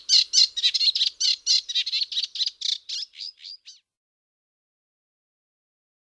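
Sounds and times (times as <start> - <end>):
reed warbler chattering song: 0.0 - 3.9.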